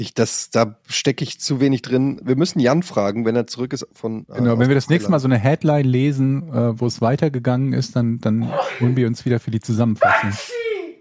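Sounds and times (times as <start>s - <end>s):
speech: 0.0s - 10.7s
sneeze: 8.4s - 9.0s.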